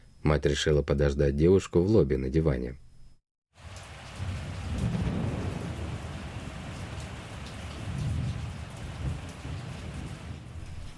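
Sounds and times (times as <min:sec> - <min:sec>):
speech: 0:00.2 - 0:02.8
low thunder rumbles: 0:03.6 - 0:10.9
steady heavy rain: 0:03.6 - 0:10.9.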